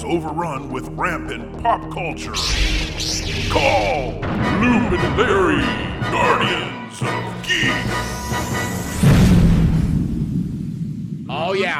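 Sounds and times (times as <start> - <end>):
speech: 0.0 - 9.1, 11.4 - 11.7
single deep explosion boom with low rumble: 4.2 - 6.2, 9.0 - 11.7.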